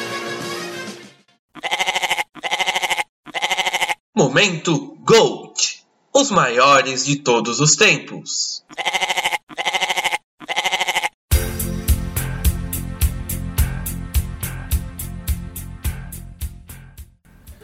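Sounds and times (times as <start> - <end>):
goat bleating: 1.5 - 4.0, 8.6 - 11.2
speech: 4.2 - 9.0
upbeat music track with a steady beat: 11.3 - 17.6.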